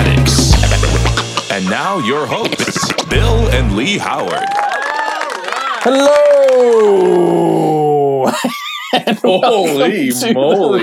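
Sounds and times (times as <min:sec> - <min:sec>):
laughter: 0:00.5 - 0:10.8
speech: 0:01.6 - 0:04.8, 0:05.8 - 0:07.6, 0:08.2 - 0:10.8
man's voice imitating an animal's growl: 0:03.0 - 0:03.7, 0:05.8 - 0:08.3.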